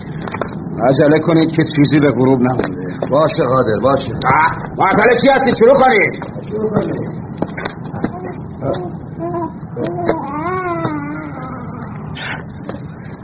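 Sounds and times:
speech: 0:00.8 - 0:07.1
baby crying: 0:08.2 - 0:12.2.

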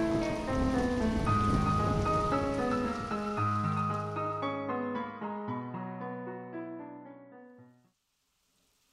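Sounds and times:
rain pattering: 0:00.0 - 0:04.7, 0:08.0 - 0:08.9
slow sustained musical score: 0:00.0 - 0:05.7.

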